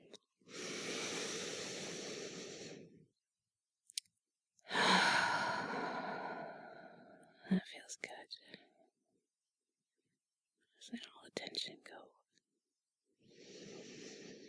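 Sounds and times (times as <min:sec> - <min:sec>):
deep breathing: 0:00.5 - 0:03.0, 0:04.7 - 0:07.2, 0:13.2 - 0:14.4
small click: 0:03.9 - 0:04.1.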